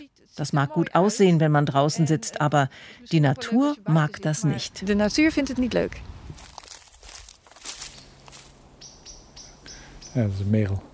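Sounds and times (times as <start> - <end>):
speech: 0.1 - 6.2, 10.2 - 10.9
footsteps rustling through leaves: 6.1 - 8.7
blackbird giving sharp high alarm notes: 8.0 - 10.8.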